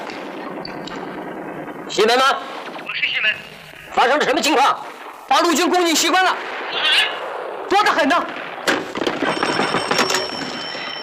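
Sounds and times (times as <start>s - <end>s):
speech: 1.9s - 2.6s, 3.2s - 8.4s
telephone bell ringing with a bright metallic jangle: 9.2s - 11.0s.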